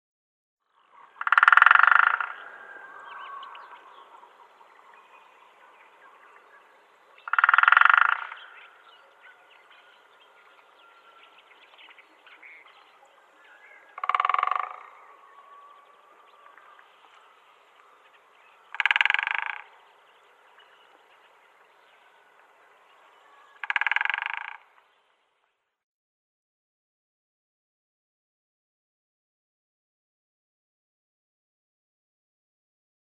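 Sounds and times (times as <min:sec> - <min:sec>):
Syrian Woodpecker drumming: 0:01.2 - 0:02.4, 0:07.3 - 0:08.5, 0:14.0 - 0:15.0, 0:18.7 - 0:19.7, 0:23.6 - 0:24.8.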